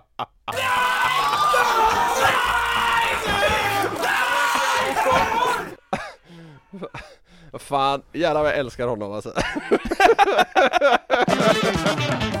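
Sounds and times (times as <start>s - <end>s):
speech: 0.2s - 0.8s, 6.8s - 12.0s
edited chorus of two men screaming: 0.5s - 5.9s
laughter: 0.5s - 7.1s, 9.4s - 12.2s.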